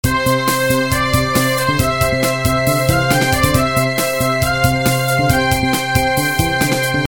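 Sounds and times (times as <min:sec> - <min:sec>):
midi music: 0:00.0 - 0:07.0.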